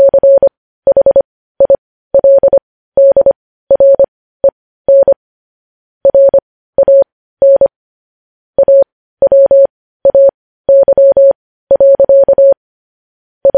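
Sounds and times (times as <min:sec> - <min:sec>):
Morse code tapped out as a steady mid-pitched tone: 0:00.0 - 0:04.1, 0:06.0 - 0:07.7, 0:08.6 - 0:12.6.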